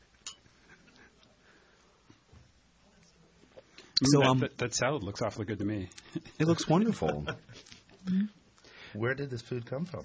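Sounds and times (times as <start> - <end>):
glasses clinking during a toast: 0.2 - 0.5
speech: 4.0 - 8.4, 9.0 - 10.0.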